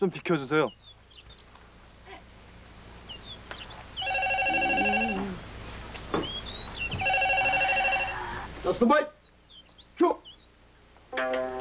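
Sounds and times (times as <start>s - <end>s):
speech: 0.0s - 0.9s, 8.7s - 9.2s, 10.0s - 10.2s
faint high whine: 2.7s - 11.6s
telephone ringing with electronic trilling tones: 4.0s - 5.3s, 6.9s - 8.3s.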